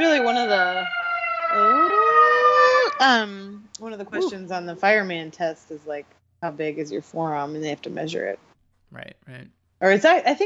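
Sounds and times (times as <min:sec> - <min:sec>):
speech: 0:00.0 - 0:02.0, 0:03.0 - 0:10.4
mechanical hand-crank fire engine siren wailing: 0:00.0 - 0:03.4.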